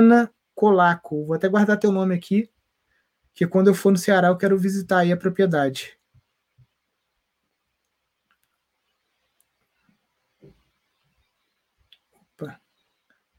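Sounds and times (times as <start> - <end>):
speech: 0.0 - 2.5, 3.4 - 6.0, 12.4 - 12.6
sharp computer mouse clicks: 7.8 - 9.7.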